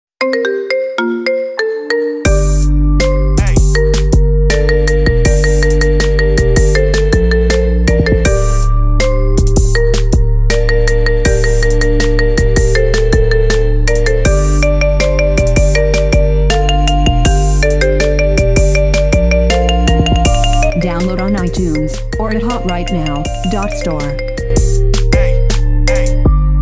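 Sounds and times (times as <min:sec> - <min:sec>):
marimba melody: 0:00.2 - 0:26.5.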